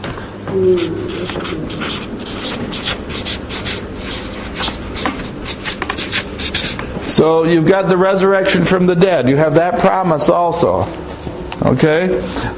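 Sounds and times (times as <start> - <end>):
speech: 0.5 - 3.4, 7.2 - 11.0, 11.6 - 12.5
handwriting strokes writing a word by hand: 0.5 - 6.9.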